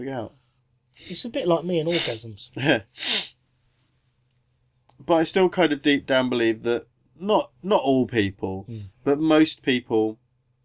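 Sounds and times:
speech: 0.0s - 3.3s, 5.0s - 10.2s
person sneezing: 1.0s - 1.3s, 1.9s - 3.3s.

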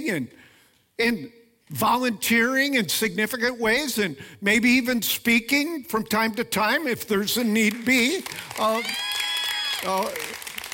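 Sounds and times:
speech: 0.0s - 9.2s, 9.8s - 10.4s
audience giving light scattered applause: 8.0s - 10.7s.

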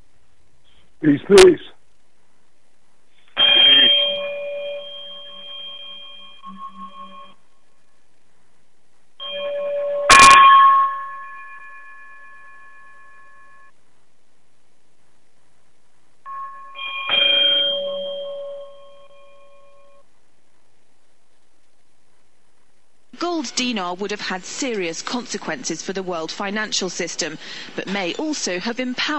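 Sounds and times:
speech: 1.0s - 1.8s, 23.6s - 29.1s
chimes ringing to close a radio broadcast: 3.4s - 7.4s, 9.2s - 13.7s, 16.3s - 20.0s.

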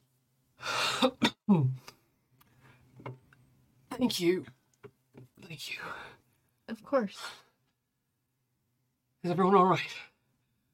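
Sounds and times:
person coughing: 0.9s - 1.7s
speech: 4.0s - 4.6s, 5.6s - 7.4s, 9.2s - 10.1s.

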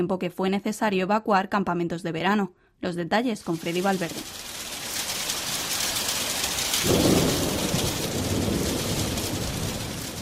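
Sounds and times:
speech: 0.0s - 4.6s
deep rumble of thunder: 3.4s - 10.2s
hail: 3.4s - 10.2s
heavy summer rain in a thunderstorm over the Czech capital: 3.4s - 10.2s.

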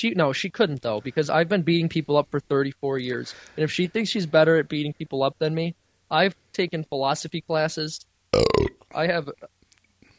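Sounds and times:
speech: 0.0s - 9.6s
throaty burp: 8.3s - 8.9s.

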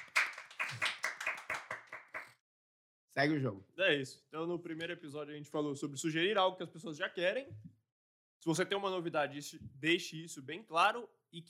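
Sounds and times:
crisp hand claps: 0.0s - 2.4s
speech: 3.2s - 7.7s, 8.4s - 11.4s.

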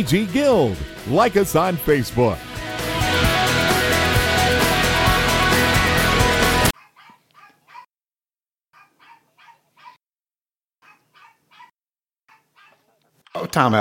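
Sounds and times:
speech: 0.0s - 2.5s, 13.4s - 13.7s
dense music: 0.0s - 6.7s
dog barking in quick bursts: 6.8s - 7.9s, 8.8s - 10.0s, 10.8s - 13.0s.

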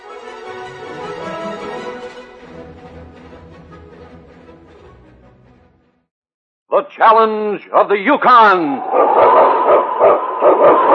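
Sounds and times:
speech: 6.7s - 10.7s
husky lead sled dog of the North Country barking: 8.8s - 10.9s.

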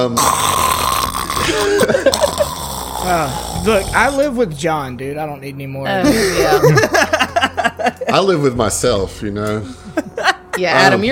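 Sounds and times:
speech: 0.0s - 0.5s, 1.5s - 2.3s, 3.0s - 11.0s
voice imitating loud snoring with a rough rattling snort: 0.0s - 4.3s
laughter: 1.4s - 2.5s, 6.0s - 8.5s, 9.6s - 10.9s.

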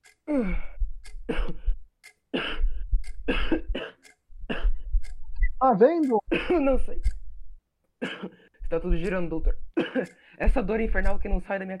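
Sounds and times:
speech: 0.3s - 0.7s, 5.7s - 7.1s, 8.7s - 11.7s
person gasping: 0.3s - 0.8s
person acting harsh choking coughs as if coughing up blood: 1.3s - 1.7s, 2.4s - 2.7s, 3.3s - 4.8s, 6.3s - 6.7s, 8.0s - 8.4s, 9.8s - 10.1s.

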